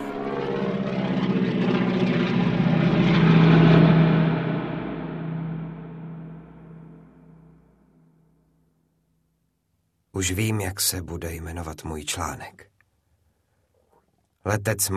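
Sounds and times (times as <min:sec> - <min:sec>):
propeller plane engine roaring during an aerobatic dive: 0:00.0 - 0:06.6
speech: 0:10.2 - 0:12.8, 0:14.4 - 0:14.9.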